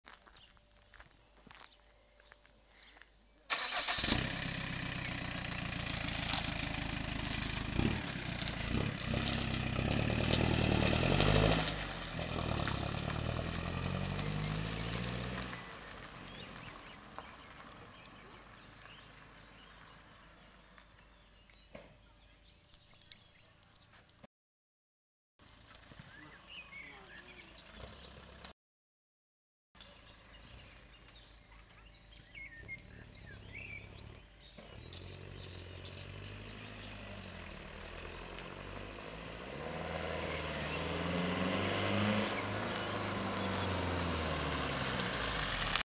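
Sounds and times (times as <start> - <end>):
Jumper exhaust: 3.5 - 20.8, 32.3 - 45.8.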